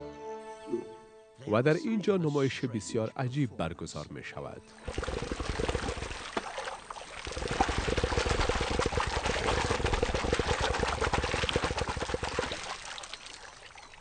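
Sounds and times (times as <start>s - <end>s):
speech: 1.5s - 5.4s
male crocodiles vibrating water in a display of strength: 4.8s - 13.9s.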